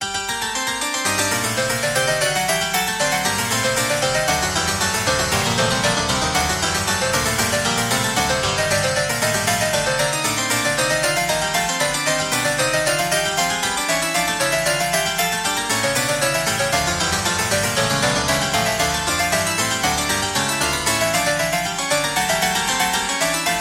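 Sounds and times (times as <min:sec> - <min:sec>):
upper harpsichord: 0:00.0 - 0:23.5.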